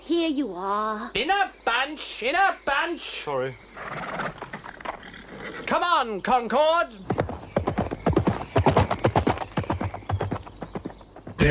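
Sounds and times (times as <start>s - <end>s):
speech: 0.2s - 4.4s, 5.7s - 7.2s
horse hooves galloping: 3.7s - 5.8s, 6.8s - 11.4s.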